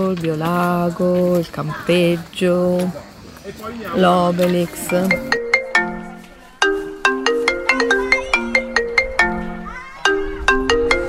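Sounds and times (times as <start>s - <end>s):
speech: 0.1s - 5.4s
phone ringtone with electronic tune of plucked notes: 4.6s - 11.0s.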